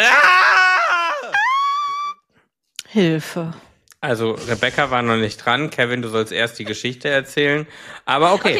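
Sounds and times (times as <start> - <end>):
person screaming loudly: 0.0 - 2.2
speech: 3.0 - 8.5.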